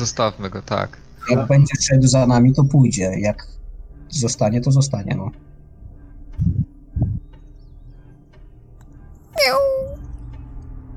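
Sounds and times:
speech: 0.0 - 5.4, 6.4 - 7.2, 9.4 - 10.0
soft low thumps: 5.4 - 8.0
small cat meowing: 9.4 - 10.0.

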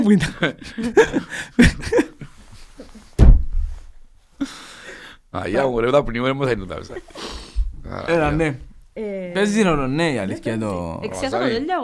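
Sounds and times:
speech: 0.0 - 2.2, 5.3 - 11.8
laughter: 0.0 - 3.0
heavy door slamming: 3.2 - 3.8.

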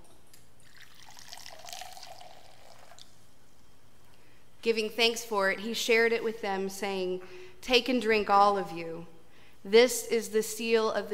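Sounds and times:
wine pouring into a cup: 0.6 - 3.2
speech: 4.6 - 11.1.

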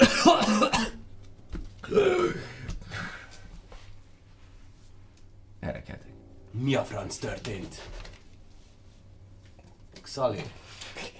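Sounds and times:
voice imitating a character coughing: 0.0 - 1.0
speech: 6.6 - 8.0, 10.1 - 10.6.

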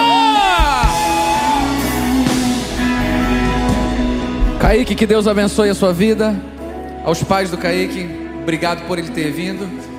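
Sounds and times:
audience shouting and whooping for joy: 0.0 - 3.0
music playing: 0.0 - 9.9
speech: 4.6 - 9.9.

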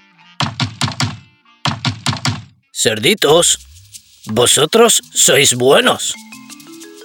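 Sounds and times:
knocking on a wooden door: 0.4 - 2.5
speech: 2.8 - 6.4.

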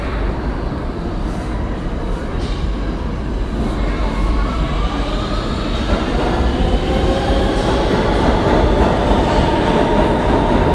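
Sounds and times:
subway train rumbling through Times Square station: 0.0 - 10.7.

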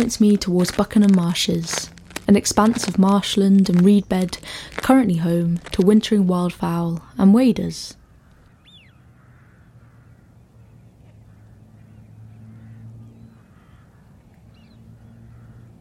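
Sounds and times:
speech: 0.0 - 8.0
dense chorus of many rooks cawing at a winter roost on marshland: 8.0 - 10.5, 11.2 - 14.2, 15.0 - 15.7.

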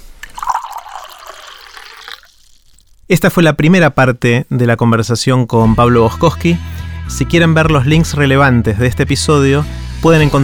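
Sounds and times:
drinking water pouring into a glass: 0.2 - 2.9
speech: 3.1 - 10.4.

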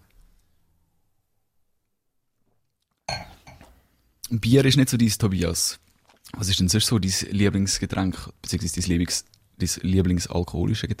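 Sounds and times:
wine glasses clinking in a toast: 3.1 - 3.8
speech: 4.3 - 10.9.

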